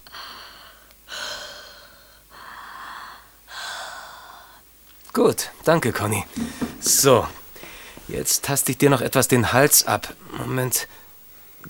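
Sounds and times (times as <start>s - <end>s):
deep breaths in and out with the mouth open during a stethoscope examination: 0.0s - 4.7s, 7.6s - 8.0s
speech: 5.2s - 7.4s, 8.1s - 11.0s.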